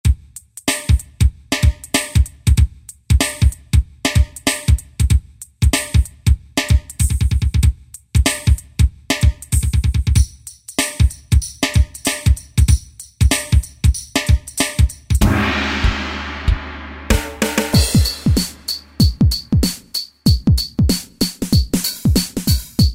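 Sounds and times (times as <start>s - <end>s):
Boss DR-770 drum machine hip hop patterns: 0.0s - 22.9s.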